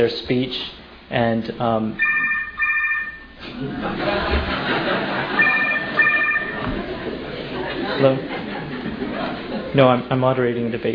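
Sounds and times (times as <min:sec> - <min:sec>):
speech: 0:00.0 - 0:02.2, 0:03.4 - 0:05.6, 0:08.0 - 0:08.4, 0:09.7 - 0:10.9
noise: 0:00.0 - 0:10.9
cell phone electronic ringtone during a gathering at a moderated debate: 0:02.0 - 0:03.4, 0:05.4 - 0:06.7
laughter: 0:03.4 - 0:10.0.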